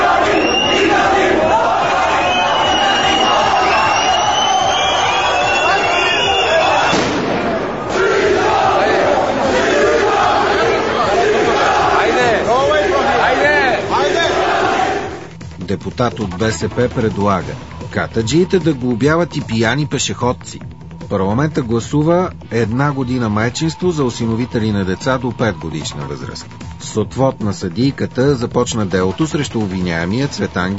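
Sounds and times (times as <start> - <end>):
large crowd shouting and chanting at an airport in Yerevan Armenia: 0.0 - 15.3
firecracker bang: 6.8 - 8.0
speech: 15.9 - 30.7.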